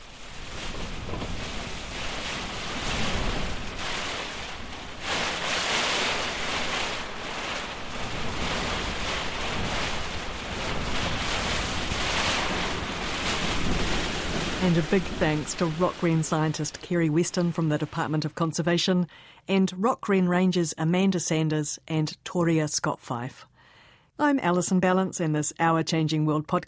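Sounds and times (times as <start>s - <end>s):
strong wind buffeting the microphone in a severe mountain storm: 0.0s - 16.6s
heavy rain hissing in a severe mountain storm: 0.0s - 18.2s
speech: 14.7s - 23.5s, 24.2s - 26.6s.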